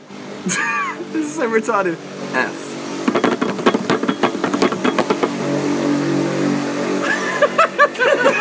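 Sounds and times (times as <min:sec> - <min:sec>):
laughter: 0:00.5 - 0:01.2, 0:07.0 - 0:08.3
speech: 0:00.5 - 0:02.7
motorbike engine revving past: 0:02.1 - 0:08.3.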